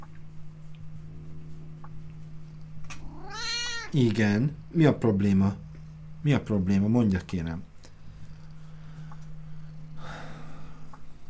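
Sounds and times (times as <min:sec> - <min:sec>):
low steady hum: 0:00.0 - 0:11.2
house cat meowing: 0:03.0 - 0:04.0
speech: 0:03.9 - 0:05.6, 0:06.2 - 0:07.7.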